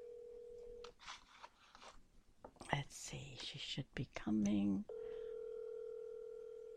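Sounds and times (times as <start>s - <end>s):
telephone ringing tone for an outgoing call: 0.0s - 0.8s, 4.9s - 6.7s
speech: 2.8s - 4.9s.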